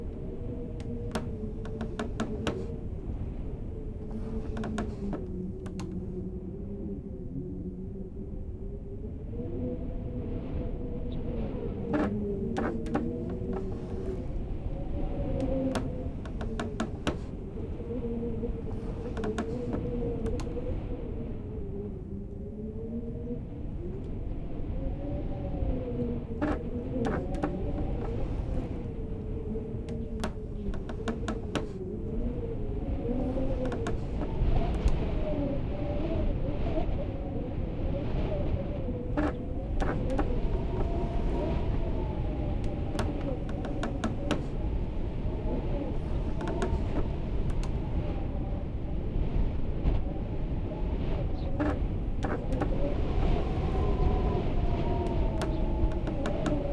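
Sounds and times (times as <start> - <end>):
wind in room: 0.0 - 56.7.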